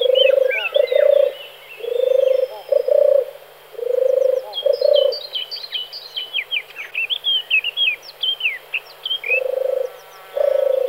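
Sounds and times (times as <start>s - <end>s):
European turtle dove purring coo: 0.0s - 5.2s, 9.3s - 10.8s
high thin twittering from other birds: 0.0s - 10.8s.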